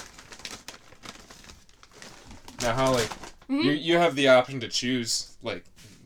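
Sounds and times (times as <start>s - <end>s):
plastic sauce packet being crumpled: 0.0s - 3.6s
speech: 2.6s - 5.7s.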